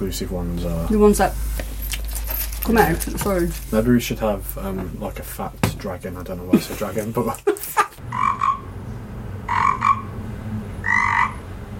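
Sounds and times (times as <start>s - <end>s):
speech: 0.0s - 1.7s, 2.6s - 8.2s
laughter: 6.3s - 8.0s
frog croaking: 8.0s - 8.7s, 9.4s - 10.2s, 10.8s - 11.6s.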